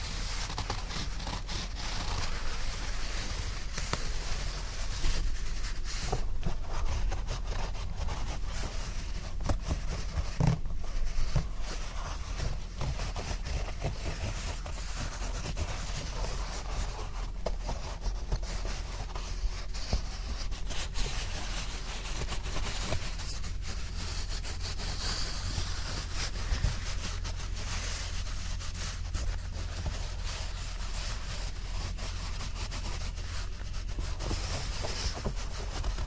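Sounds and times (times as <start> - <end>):
dry blanket rustling: 0.0 - 36.0.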